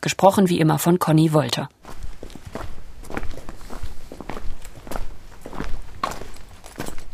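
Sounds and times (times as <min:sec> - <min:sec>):
speech: 0:00.0 - 0:02.0
footsteps on a hard outdoor surface in Werben an der Elbe old town, Germany: 0:01.8 - 0:07.1.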